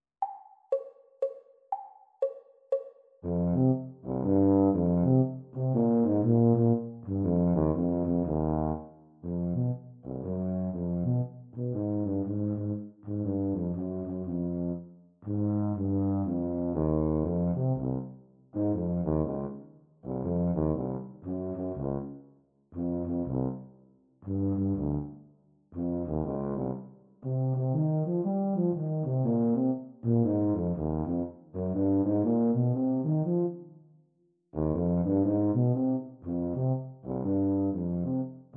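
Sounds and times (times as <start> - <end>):
E-flat tuba duet: 3.2 - 22.2, 22.8 - 25.2, 25.8 - 33.7, 34.6 - 38.5.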